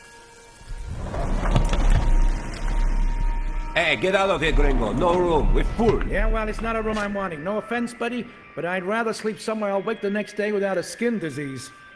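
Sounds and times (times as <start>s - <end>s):
revolving door turning: 0.6s - 7.3s
speech: 3.8s - 11.8s.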